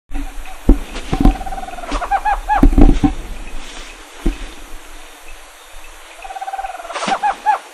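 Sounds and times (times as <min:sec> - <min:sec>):
Megascops choliba in PN El Palmar: 0:01.2 - 0:02.7, 0:06.2 - 0:07.7.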